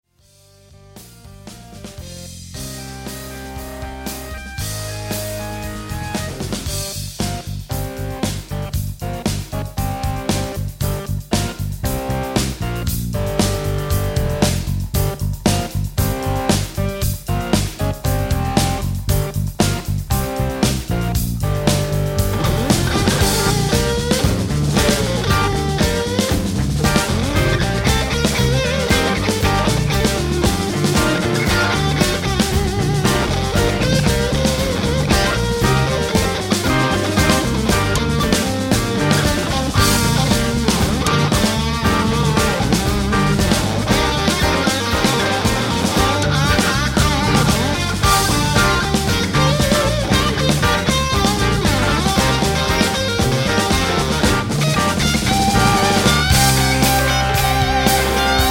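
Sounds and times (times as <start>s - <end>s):
red fuzz distortion: 0.8s - 58.4s.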